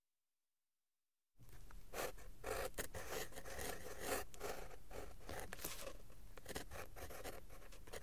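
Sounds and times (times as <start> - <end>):
pen scratching across paper at a desk: 1.9 - 8.0.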